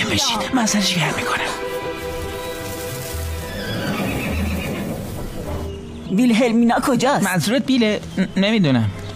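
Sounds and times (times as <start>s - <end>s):
speech: 0.1s - 1.7s, 6.1s - 9.0s
unwell horse neighing: 3.4s - 5.5s.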